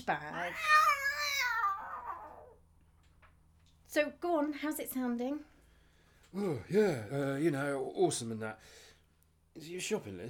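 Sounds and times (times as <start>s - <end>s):
speech: 0.0s - 1.0s, 3.9s - 5.5s, 6.3s - 8.9s, 9.6s - 10.2s
cat meowing: 0.3s - 2.6s.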